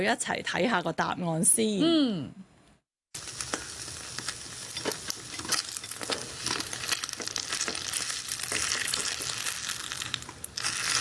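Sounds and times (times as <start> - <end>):
speech: 0.0 - 2.4
food sizzling in a hot pan: 3.1 - 11.0.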